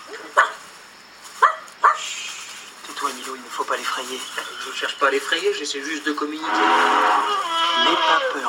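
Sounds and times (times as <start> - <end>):
faint steady hiss: 0.0 - 8.4
dog barking: 0.2 - 0.6, 1.4 - 2.1
speech: 3.2 - 8.4.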